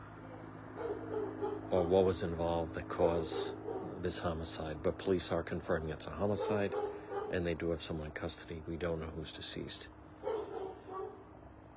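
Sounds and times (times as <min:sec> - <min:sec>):
dog giving quick high barks: 0:00.8 - 0:02.0, 0:03.1 - 0:04.0, 0:06.2 - 0:07.5, 0:10.2 - 0:11.2
speech: 0:01.7 - 0:10.4.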